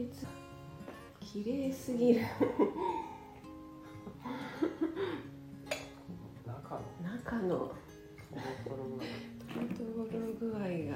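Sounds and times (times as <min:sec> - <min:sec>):
speech: 0:00.0 - 0:00.4, 0:01.2 - 0:03.0, 0:06.7 - 0:10.9
casual voices: 0:00.9 - 0:10.9
laughter: 0:02.2 - 0:03.2, 0:04.2 - 0:05.3
tableware and cutlery clinking at a breakfast table: 0:05.7 - 0:06.1.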